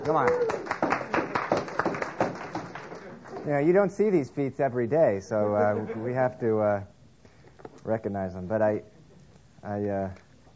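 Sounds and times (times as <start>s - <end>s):
speech: 0.0s - 0.8s, 3.4s - 6.9s, 7.9s - 8.9s, 9.6s - 10.2s
congregation applauding: 0.0s - 3.8s.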